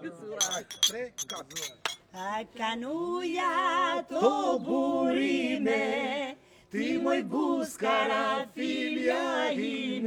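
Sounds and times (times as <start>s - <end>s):
speech: 0.3s - 10.0s
glasses of homemade raki clinking in a toast in Permet Albania: 0.4s - 2.4s.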